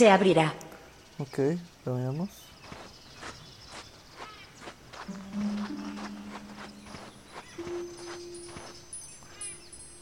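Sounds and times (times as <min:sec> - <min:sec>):
speech: 0:00.0 - 0:00.6, 0:01.2 - 0:02.5
steady rhythmic footsteps: 0:02.7 - 0:09.4
low sustained hum: 0:05.1 - 0:09.3
soft high wind-chime tinkles as video game sound cue: 0:05.2 - 0:10.0.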